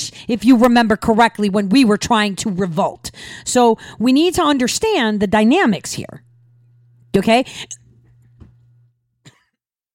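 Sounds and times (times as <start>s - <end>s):
low steady hum: 0.1s - 9.2s
speech: 0.3s - 6.3s, 7.1s - 7.8s
dry coughs from one person: 9.2s - 9.6s.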